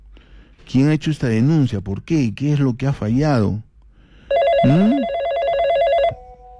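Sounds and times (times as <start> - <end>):
speech: 0.7 - 3.7, 4.6 - 5.1
telephone ringing with electronic bell tone for incoming call: 4.3 - 6.2.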